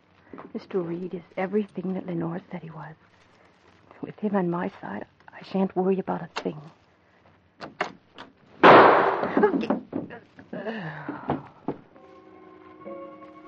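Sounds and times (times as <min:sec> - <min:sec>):
speech: 0:00.5 - 0:03.2, 0:04.0 - 0:06.8, 0:09.4 - 0:11.2
gunshot at the front doorway of a home: 0:08.6 - 0:09.4
sustained tone: 0:12.0 - 0:13.4.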